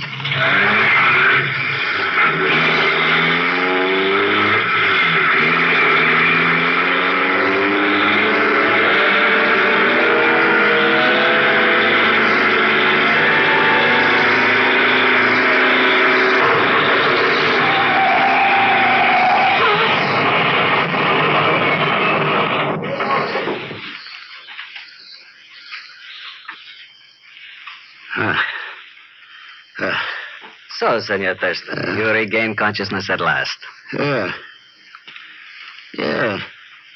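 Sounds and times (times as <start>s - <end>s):
car engine racing at high revs to crash through a roadblock: 0.0s - 24.0s
speech: 31.0s - 34.5s, 36.0s - 36.5s.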